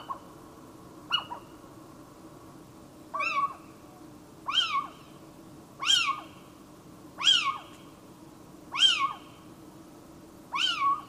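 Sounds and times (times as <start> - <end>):
little owl giving shrill mewing calls: 0.0 - 0.3, 1.1 - 1.6, 3.1 - 3.8, 4.4 - 5.2, 5.8 - 6.5, 7.2 - 7.8, 8.7 - 9.4, 10.5 - 11.0.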